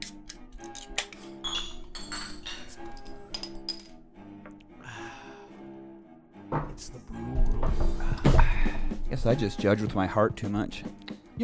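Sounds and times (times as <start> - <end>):
glasses clinking together in a toast: 1.2 - 4.6
speech: 6.5 - 11.4.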